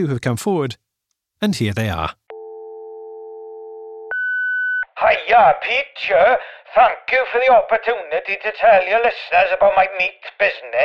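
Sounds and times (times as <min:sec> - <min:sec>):
speech: 0:00.0 - 0:00.8, 0:01.4 - 0:02.2, 0:05.1 - 0:10.8
answering machine beep: 0:04.0 - 0:04.8.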